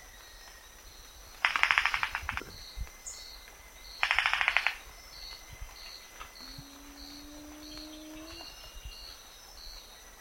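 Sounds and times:
high insect pulses: 0:00.0 - 0:10.2
scaled ground cuckoo song: 0:05.9 - 0:09.2.

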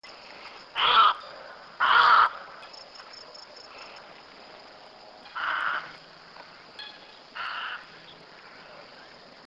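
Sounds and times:
little egret call: 0:00.7 - 0:02.6, 0:05.2 - 0:08.2.

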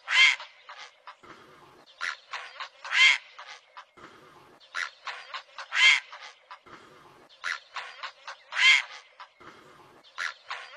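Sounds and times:
great blue heron raspy notes and harsh squawk: 0:00.0 - 0:01.2, 0:02.0 - 0:03.6, 0:04.7 - 0:06.6, 0:07.4 - 0:09.4, 0:10.2 - 0:10.7.

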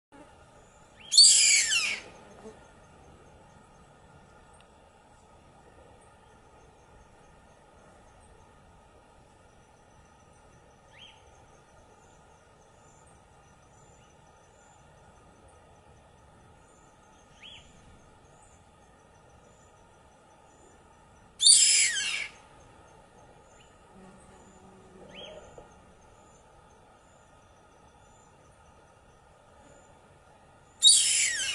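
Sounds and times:
white hawk calling: 0:01.1 - 0:02.2, 0:21.4 - 0:22.4, 0:30.8 - 0:31.5.

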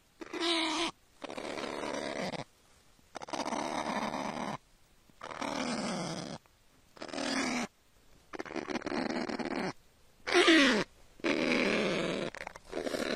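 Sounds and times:
kakapo uttering rough growling rasps: 0:00.2 - 0:02.5, 0:03.2 - 0:04.6, 0:05.2 - 0:06.4, 0:07.0 - 0:07.7, 0:08.3 - 0:13.1.

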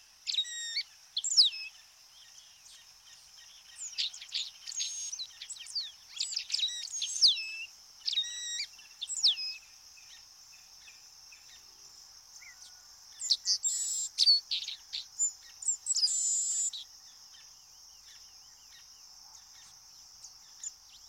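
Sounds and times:
White-browed meadowlark song with sharp high notes and sliding whistles: 0:00.0 - 0:21.0
steady high-pitched insect drone: 0:00.0 - 0:21.0.

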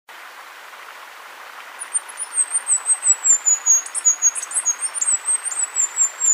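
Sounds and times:
mid-range background hiss: 0:00.1 - 0:06.3
Bluish flowerpiercer song, high thin twittering run: 0:01.8 - 0:06.3.

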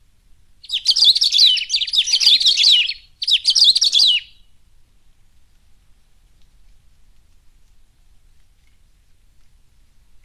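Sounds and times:
Saffron-billed sparrow warbling: 0:00.6 - 0:04.4.

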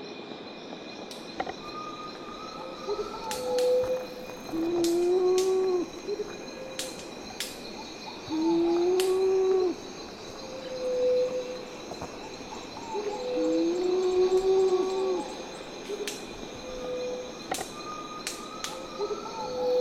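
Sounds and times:
jacu calling: 0:01.4 - 0:19.8
jacu wing snap: 0:03.2 - 0:05.8, 0:06.7 - 0:07.8, 0:08.8 - 0:09.5, 0:15.9 - 0:16.3, 0:17.4 - 0:18.8.

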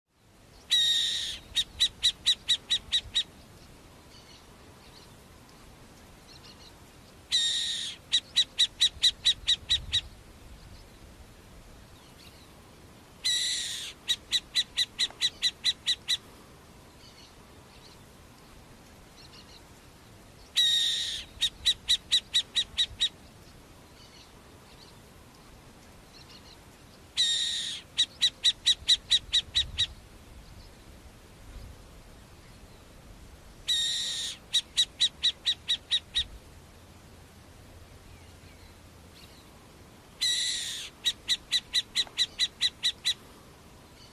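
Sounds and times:
masked owl calling: 0:00.6 - 0:03.4, 0:07.3 - 0:10.2, 0:13.2 - 0:16.3, 0:20.5 - 0:23.2, 0:27.2 - 0:30.0, 0:33.6 - 0:36.4, 0:40.2 - 0:43.3.

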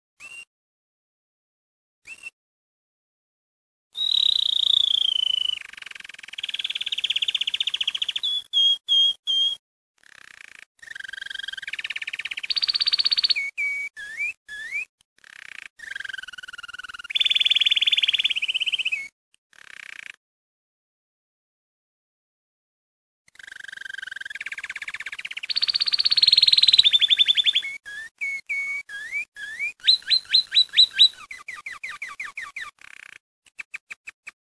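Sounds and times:
Belgian canary singing: 0:04.0 - 0:20.2, 0:23.4 - 0:33.2.

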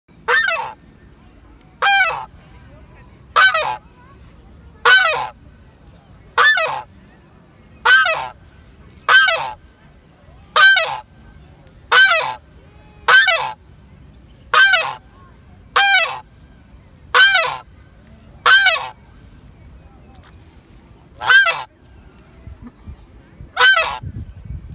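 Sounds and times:
African pygmy goose calling: 0:00.2 - 0:00.8, 0:01.8 - 0:02.3, 0:03.3 - 0:03.9, 0:04.8 - 0:05.4, 0:06.3 - 0:06.9, 0:07.8 - 0:08.4, 0:09.1 - 0:09.6, 0:10.5 - 0:11.1, 0:11.9 - 0:13.6, 0:14.5 - 0:15.0, 0:15.7 - 0:16.3, 0:17.1 - 0:17.7, 0:18.4 - 0:19.0, 0:21.2 - 0:21.7, 0:23.5 - 0:24.1.

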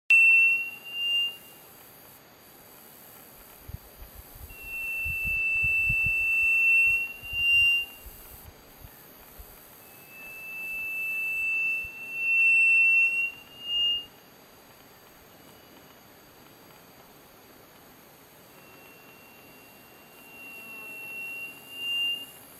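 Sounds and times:
saudade bird singing: 0:00.1 - 0:01.6, 0:04.6 - 0:08.2, 0:08.9 - 0:14.2, 0:18.5 - 0:22.4.

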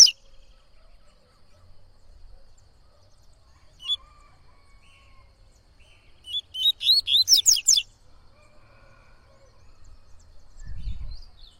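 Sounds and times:
yellow-bellied seedeater song of rapid high whistled notes: 0:00.0 - 0:00.6, 0:05.9 - 0:07.9.

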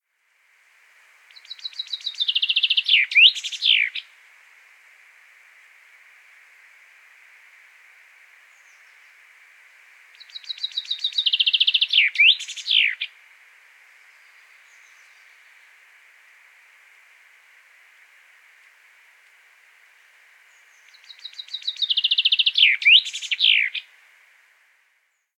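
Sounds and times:
common chaffinch singing: 0:01.3 - 0:04.1, 0:10.1 - 0:13.2, 0:20.0 - 0:23.9.

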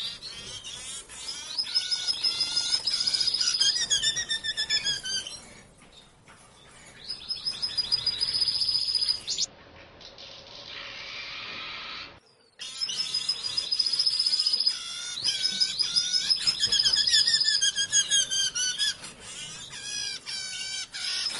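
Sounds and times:
diamond firetail squeaky chirping song: 0:00.0 - 0:09.5, 0:10.2 - 0:21.3.

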